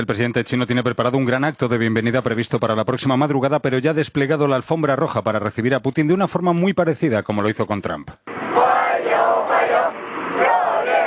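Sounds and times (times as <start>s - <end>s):
speech: 0.0s - 8.6s
dozens of children cheering a welcome arrival: 8.3s - 11.0s.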